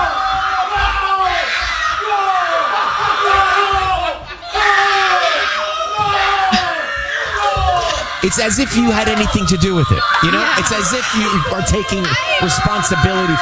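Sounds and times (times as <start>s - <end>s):
family at home yelling and cheering at a football win: 0.0s - 13.4s
speech: 8.2s - 13.4s.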